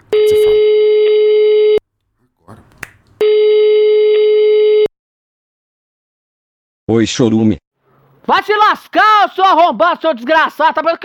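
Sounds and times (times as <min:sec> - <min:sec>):
telephone ringback tone on an outgoing call: 0:00.1 - 0:01.8, 0:03.2 - 0:04.9
speech: 0:06.9 - 0:07.6, 0:08.3 - 0:11.0.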